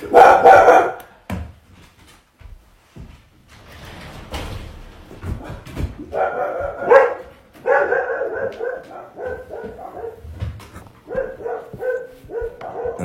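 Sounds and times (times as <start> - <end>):
dog barking: 0.0 - 1.1, 6.0 - 13.0.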